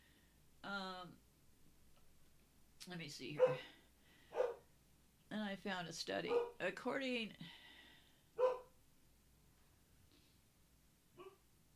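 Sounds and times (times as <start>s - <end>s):
speech: 2.8s - 3.8s, 5.3s - 7.6s
dog barking outside: 3.4s - 3.7s, 4.3s - 4.6s, 6.3s - 6.6s, 8.4s - 8.7s, 11.2s - 11.4s.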